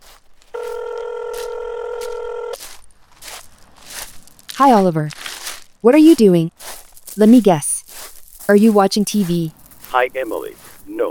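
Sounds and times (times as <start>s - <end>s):
telephone ringing with a steady electronic tone: 0.5s - 2.6s
speech: 4.6s - 6.6s, 7.2s - 7.7s, 8.5s - 11.0s
faint hiss of noise: 9.4s - 11.0s.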